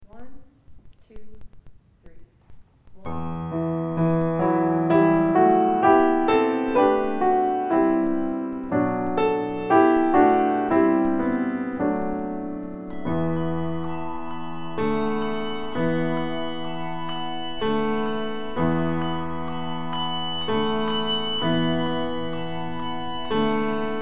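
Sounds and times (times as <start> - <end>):
piano: 3.0 - 24.0
bells: 3.5 - 24.0.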